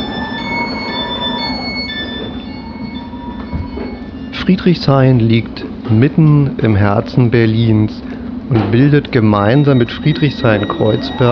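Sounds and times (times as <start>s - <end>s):
train wheels and brakes squealing with high-pitched tones: 0.0s - 5.0s, 8.8s - 11.2s
S-Bahn commuter train S41 Ringbahn rumbling at a station platform: 0.0s - 11.2s
speech: 4.5s - 11.2s.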